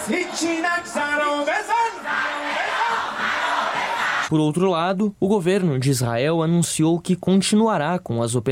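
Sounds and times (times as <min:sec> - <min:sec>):
large crowd of protesters chanting in unison: 0:00.0 - 0:04.3
speech: 0:00.1 - 0:02.5, 0:04.3 - 0:08.5.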